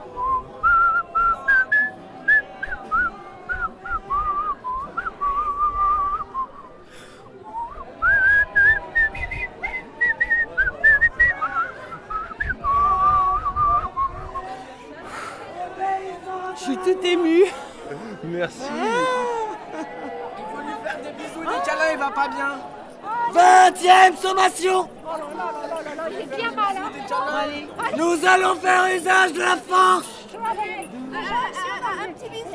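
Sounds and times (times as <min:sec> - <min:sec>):
faint crowd chatter at a protest: 0:00.0 - 0:32.5
person whistling a melodic tune at a protest: 0:00.1 - 0:06.8, 0:07.5 - 0:14.5
laughter: 0:16.6 - 0:22.6, 0:27.5 - 0:29.2.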